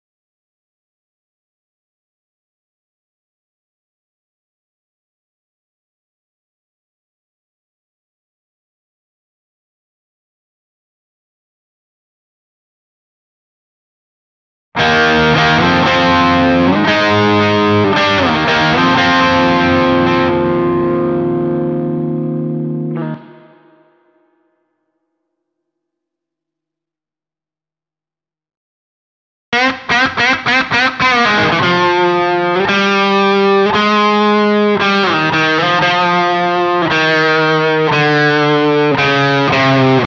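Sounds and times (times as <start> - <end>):
main guitar intro: 14.8 - 24.4, 29.6 - 40.0.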